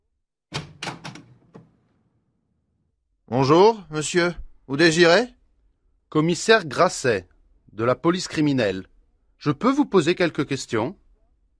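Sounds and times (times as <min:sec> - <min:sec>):
front door latch clunk: 0:00.5 - 0:01.8
speech: 0:03.3 - 0:05.4, 0:06.1 - 0:11.0.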